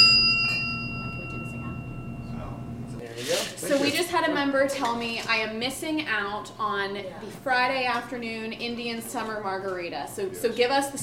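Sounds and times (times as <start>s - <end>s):
small bell on tequila bottle top ringing: 0.0s - 2.9s
speech: 3.8s - 11.0s.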